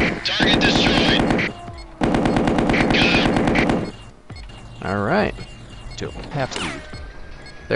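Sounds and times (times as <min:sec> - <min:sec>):
machine gun fire in a video game: 0:00.4 - 0:04.0
speech: 0:06.0 - 0:07.0.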